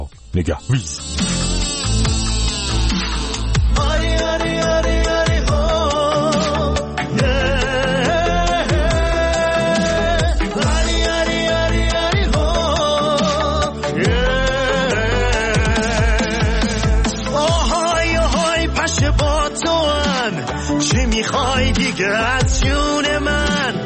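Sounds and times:
busy musical backing: 0.0s - 23.8s
speech: 0.4s - 1.3s
loud continuous mosquito-like whine: 0.7s - 4.4s.

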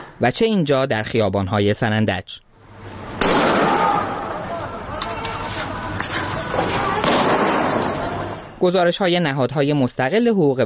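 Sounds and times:
speech: 0.2s - 2.4s, 8.6s - 10.6s
crowd din on a noisy street: 2.6s - 8.6s
sharp gunshot-like bangs in a street protest: 3.2s - 4.0s, 7.0s - 8.0s
people shouting in a street protest: 3.3s - 8.5s.

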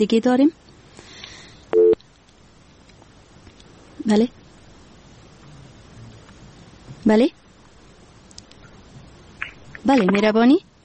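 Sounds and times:
speech: 0.0s - 0.6s, 4.0s - 4.4s, 7.0s - 7.4s, 9.8s - 10.7s
faint hiss on a phone line: 0.0s - 10.8s
phone line tone after a dropped call: 1.8s - 2.0s.

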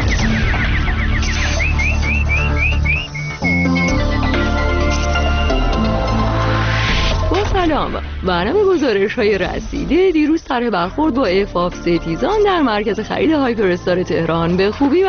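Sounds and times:
nightingale singing: 0.0s - 5.8s
dense steady musical background: 0.0s - 15.0s
speech: 7.8s - 15.0s.

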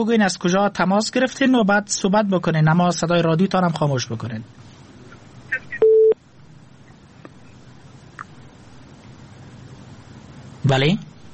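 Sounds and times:
speech: 0.0s - 4.6s, 10.7s - 11.1s
telephone busy tone beep as a call drops: 5.6s - 6.2s.

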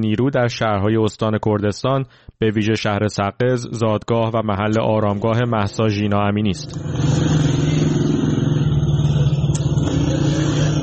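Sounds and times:
speech: 0.0s - 7.5s
special police unit motorcycle engines rumbling at a square in Saqqez Iran: 5.3s - 10.8s.

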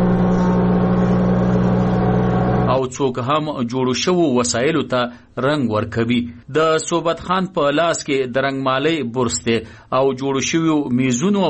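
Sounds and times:
woodworking machines cutting and planing wood in a carpentry workshop: 0.0s - 2.8s
speech: 2.8s - 11.4s.

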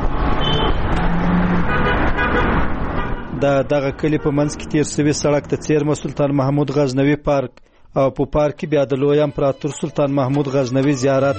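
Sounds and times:
cars and trucks passing on the Kabul–Kandahar highway by a village market near Ghazni: 0.0s - 6.9s
speech: 3.4s - 11.3s.

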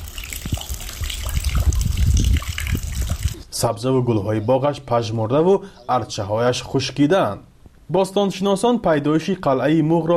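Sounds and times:
water flowing and trickling: 0.0s - 3.4s
speech: 3.6s - 10.1s.

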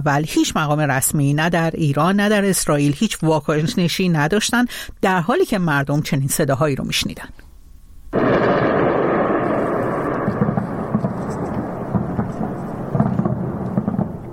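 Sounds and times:
speech: 0.0s - 7.4s
distant explosions at night in Tehran Iran: 8.1s - 14.3s
deep explosion boom with long rolling rumble at night in Tehran: 8.2s - 14.3s.

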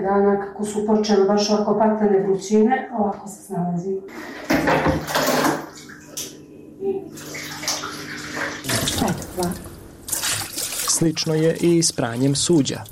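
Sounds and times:
speech: 0.0s - 5.8s, 8.4s - 9.7s, 11.0s - 12.9s
low steady hum: 0.0s - 12.9s
water poured from a canister into a washing machine: 4.1s - 6.2s, 7.1s - 12.9s.

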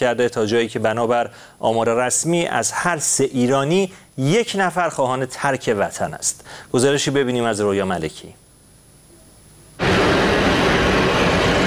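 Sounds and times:
speech: 0.0s - 8.4s
airplane jet engine roaring for takeoff: 9.8s - 11.6s.

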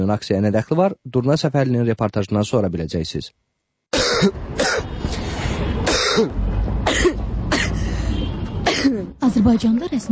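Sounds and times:
speech: 0.0s - 3.4s, 4.0s - 4.9s, 6.2s - 7.1s, 9.3s - 10.1s
people clearing throats at a street protest: 3.9s - 4.9s, 5.8s - 7.8s
people coughing at a street protest: 3.9s - 4.9s, 5.8s - 8.0s, 8.6s - 9.2s.

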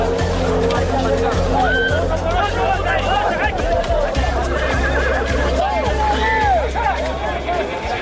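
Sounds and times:
crowd babble: 0.0s - 8.0s
laughter: 0.0s - 8.0s
Lakai horses bred for ulak neighing and whinnying: 0.1s - 6.2s.

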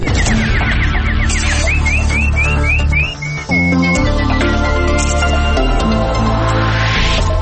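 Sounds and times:
loud busy music: 0.0s - 7.4s
nightingale chirping: 0.1s - 6.0s.

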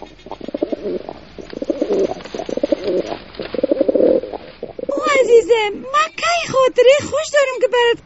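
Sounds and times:
pigeon cooing in low throaty phrases: 0.0s - 5.3s
speech: 6.6s - 8.0s.

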